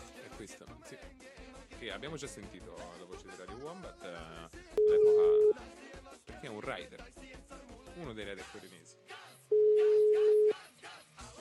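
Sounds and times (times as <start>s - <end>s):
speech: 0.4s - 9.0s
outgoing telephone call ringing tone: 4.8s - 5.6s, 9.5s - 10.6s.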